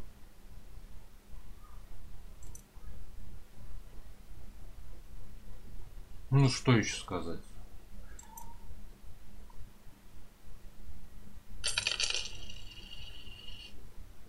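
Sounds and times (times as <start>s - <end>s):
speech: 6.4s - 7.5s
bright ringing tone: 11.6s - 13.8s
coins clinking: 11.6s - 13.8s.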